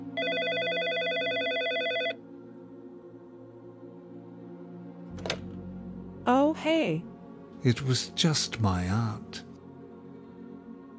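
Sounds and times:
telephone ringing with a buzzy trill: 0:00.2 - 0:02.2
speech: 0:06.3 - 0:09.5.

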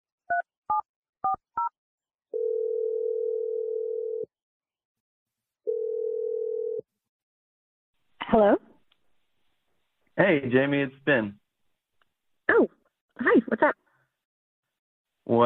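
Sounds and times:
long steady phone ringing tones: 0:02.3 - 0:04.3, 0:05.7 - 0:06.8
speech: 0:08.3 - 0:08.6, 0:10.2 - 0:11.4, 0:12.6 - 0:13.8, 0:15.3 - 0:15.4.

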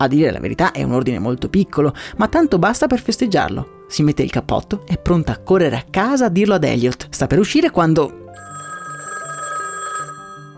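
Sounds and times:
speech: 0:00.0 - 0:08.2
telephone ringing with a warbling electronic tone: 0:08.3 - 0:10.5.

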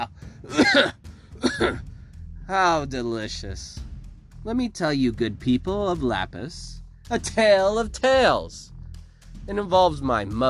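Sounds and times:
speech: 0:00.0 - 0:01.9, 0:02.5 - 0:03.8, 0:04.4 - 0:08.7, 0:09.5 - 0:10.4
harsh raspy coughing fit: 0:00.5 - 0:01.8.

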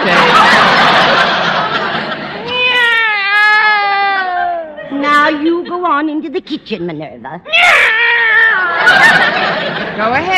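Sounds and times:
laughter: 0:00.0 - 0:02.6, 0:08.5 - 0:10.3
female house cat meowing: 0:02.5 - 0:04.7, 0:07.5 - 0:08.8
speech: 0:05.9 - 0:08.0, 0:08.8 - 0:10.3.

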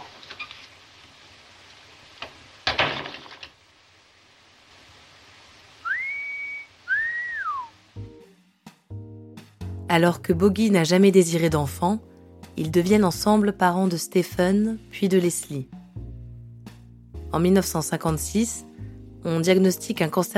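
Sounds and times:
crackly noise: 0:00.0 - 0:07.9
sharp crack: 0:02.1 - 0:03.6
person whistling two clear notes: 0:05.8 - 0:07.7
speech: 0:09.9 - 0:15.8, 0:17.3 - 0:20.3.

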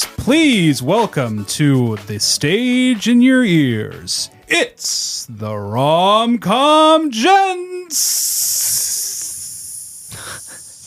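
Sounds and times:
speech: 0:00.2 - 0:08.9
person imitating a snake with a long steady hiss: 0:07.9 - 0:10.8.

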